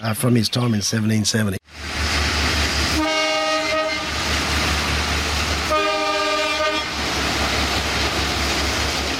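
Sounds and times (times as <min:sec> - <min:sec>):
speech: 0:00.0 - 0:01.8
small cane train rumbling past: 0:01.7 - 0:09.1
cane train horn blasts: 0:03.0 - 0:04.2, 0:05.7 - 0:07.0.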